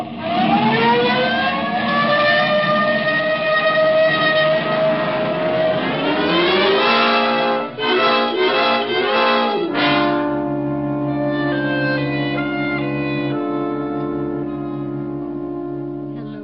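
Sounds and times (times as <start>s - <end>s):
police car siren wailing: 0.0s - 16.3s
engine and road noise: 0.0s - 16.4s.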